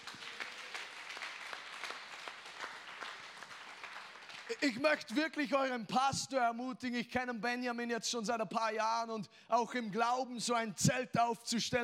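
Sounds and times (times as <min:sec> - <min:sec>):
crowd applauding: 0:00.0 - 0:05.6
speech: 0:04.5 - 0:11.8.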